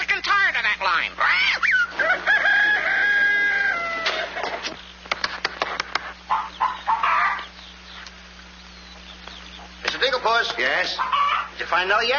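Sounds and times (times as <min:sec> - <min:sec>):
hens clucking and squawking: 0:00.6 - 0:12.1
rooster crowing: 0:01.7 - 0:04.4, 0:06.3 - 0:07.5, 0:10.9 - 0:11.6
speech: 0:10.8 - 0:12.1.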